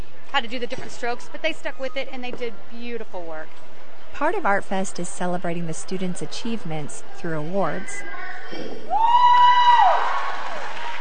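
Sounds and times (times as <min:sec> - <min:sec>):
speech: 0:00.4 - 0:09.8
crowd of students cheering and whooping from the bleachers: 0:08.9 - 0:10.9
high sustained shout: 0:08.9 - 0:10.9.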